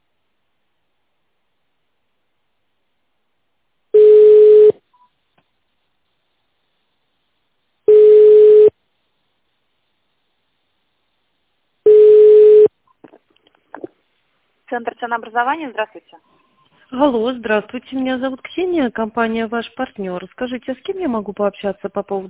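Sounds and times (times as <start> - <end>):
telephone ringback tones while waiting for an operator: 4.0 - 4.8, 7.9 - 8.7, 11.9 - 12.7
speech: 14.7 - 22.2.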